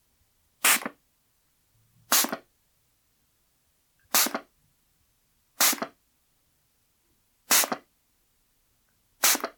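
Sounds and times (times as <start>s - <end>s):
deodorant spray gun spraying: 2.1s - 2.4s, 4.1s - 4.4s, 5.6s - 5.9s, 7.5s - 7.8s, 9.2s - 9.5s.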